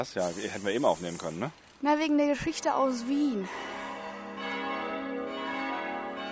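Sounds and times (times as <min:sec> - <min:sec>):
speech: 0:00.0 - 0:03.8
church bell ringing: 0:02.8 - 0:06.3.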